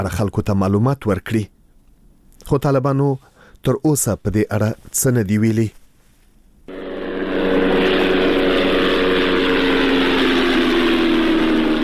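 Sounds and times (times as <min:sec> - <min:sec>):
speech: 0:00.0 - 0:01.6, 0:02.4 - 0:05.8
unmanned drone aircraft engine buzzing overhead in Ghazni province, Afghanistan: 0:06.7 - 0:11.8.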